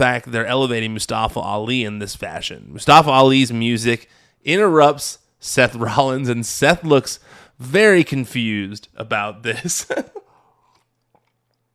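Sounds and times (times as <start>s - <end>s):
speech: 0.0s - 10.2s
gulp: 10.3s - 11.7s
person sipping water: 10.3s - 11.7s.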